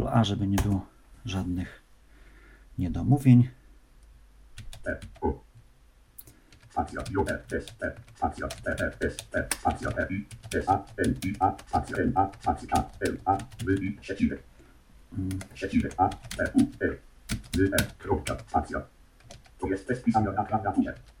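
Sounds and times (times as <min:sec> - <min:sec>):
speech: 0:00.0 - 0:01.8, 0:02.8 - 0:03.6, 0:04.6 - 0:05.5, 0:06.8 - 0:14.5, 0:15.1 - 0:19.0, 0:19.6 - 0:21.1
typing on a Bluetooth keyboard: 0:04.6 - 0:05.6, 0:06.2 - 0:14.4, 0:15.2 - 0:21.1.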